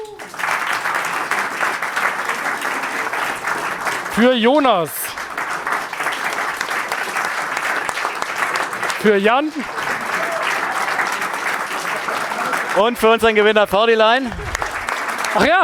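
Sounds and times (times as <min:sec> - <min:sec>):
audience applause: 0:00.0 - 0:15.6
laughter: 0:00.0 - 0:15.6
speech: 0:04.2 - 0:05.0, 0:09.0 - 0:09.8, 0:12.8 - 0:14.5, 0:15.3 - 0:15.6.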